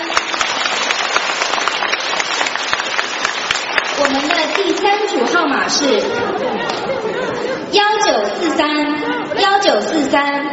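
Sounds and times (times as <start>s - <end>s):
audience applauding: 0.0s - 5.3s
speech: 4.0s - 10.5s
laughter: 5.7s - 9.8s.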